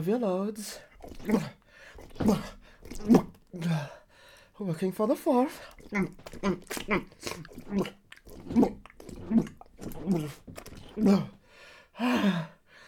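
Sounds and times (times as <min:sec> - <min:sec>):
speech: 0:00.0 - 0:04.0, 0:04.6 - 0:11.4, 0:12.0 - 0:12.6
heavy rhythmic gasping panting: 0:00.8 - 0:04.5, 0:05.5 - 0:12.8.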